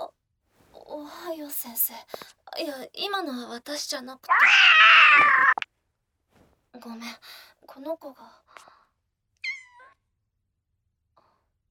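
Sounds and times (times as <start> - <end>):
speech: 1.3 - 5.7, 6.8 - 8.7
stray cat chirpy mews: 4.3 - 5.6
stray cat meowing: 4.3 - 5.6, 9.4 - 10.0.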